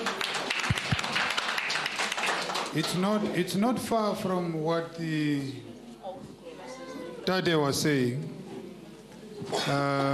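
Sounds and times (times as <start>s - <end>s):
audience applause: 0.0s - 2.8s
speech: 2.8s - 6.3s, 7.3s - 8.4s, 9.5s - 10.1s.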